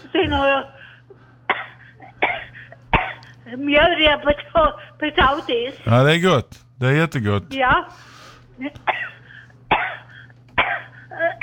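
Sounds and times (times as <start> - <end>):
low steady hum: 0.0 - 11.4
speech: 0.1 - 1.2, 3.4 - 9.1
harsh coughing fit: 1.4 - 3.4, 8.8 - 11.4.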